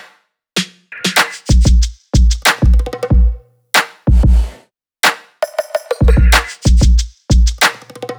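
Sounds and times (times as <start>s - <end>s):
full pop drum loop: 0.6s - 3.4s, 4.1s - 4.5s, 5.5s - 8.1s.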